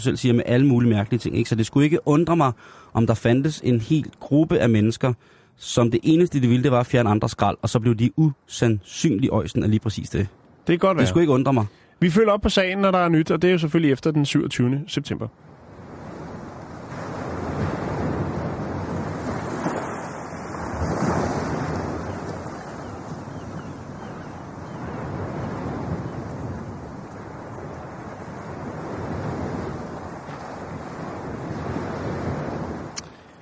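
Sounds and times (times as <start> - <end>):
speech: 0.0 - 15.5
sea waves breaking on a shore: 15.3 - 33.4
wind buffeting the microphone: 15.4 - 33.0.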